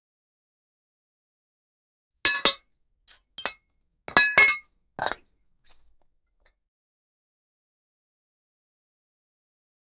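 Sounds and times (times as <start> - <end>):
metal beer bottle cap: 2.3 - 5.2.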